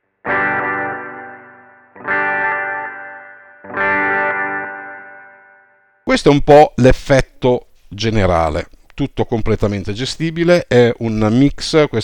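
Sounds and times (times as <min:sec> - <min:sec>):
electric guitar strumming chords through reverb and delay pedals: 0:00.0 - 0:06.0
speech: 0:06.1 - 0:12.0.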